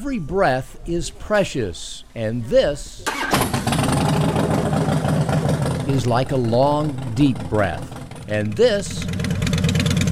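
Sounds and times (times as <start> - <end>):
speech: 0.0 - 3.8, 5.9 - 9.2
Harley motorcycle engine running with a throaty drone: 3.4 - 10.1.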